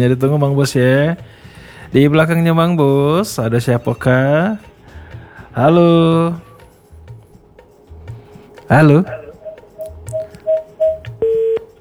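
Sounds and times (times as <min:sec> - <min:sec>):
speech: 0:00.0 - 0:04.7, 0:05.6 - 0:06.5, 0:08.7 - 0:09.2
telephone keypad tones beeping during redial: 0:09.1 - 0:11.7.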